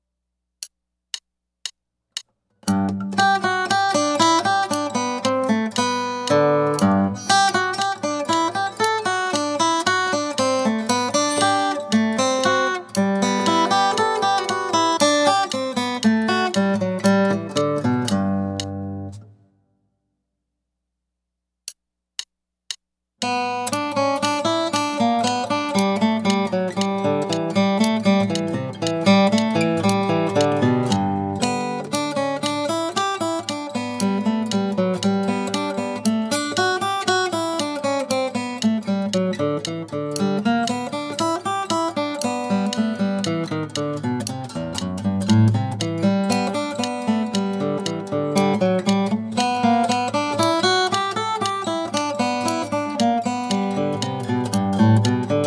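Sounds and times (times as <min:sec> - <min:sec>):
picking studies in G: 0:00.5 - 0:19.8, 0:21.6 - 0:55.4.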